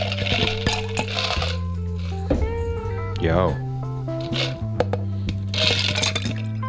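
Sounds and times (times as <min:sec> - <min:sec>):
ice cubes pouring from a jug into glasses: 0:00.0 - 0:01.6, 0:05.6 - 0:06.6
steady music: 0:00.0 - 0:06.6
speech: 0:03.2 - 0:03.6.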